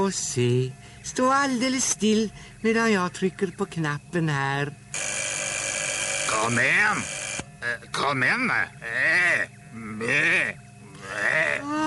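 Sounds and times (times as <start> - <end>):
speech: 0.0 - 5.2, 6.3 - 11.8
sheep bleating from a sheep-transforming machine: 10.9 - 11.7.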